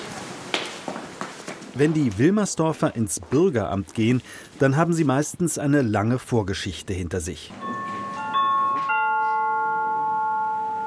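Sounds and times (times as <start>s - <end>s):
speech: 1.8s - 7.8s
two-note electronic waiting room number call chime: 7.6s - 10.8s.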